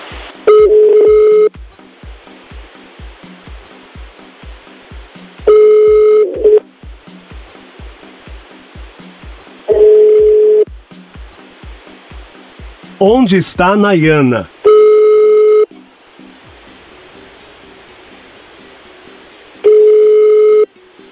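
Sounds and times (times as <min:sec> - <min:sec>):
telephone ringing tone of an unanswered call: 0:00.5 - 0:01.5, 0:05.5 - 0:06.6, 0:09.7 - 0:10.6, 0:14.7 - 0:15.7, 0:19.7 - 0:20.7
speech: 0:13.0 - 0:14.5.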